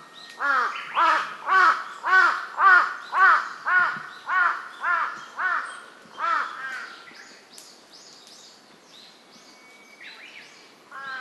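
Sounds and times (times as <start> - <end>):
large-billed crow cawing: 0.4 - 6.9, 10.9 - 11.1.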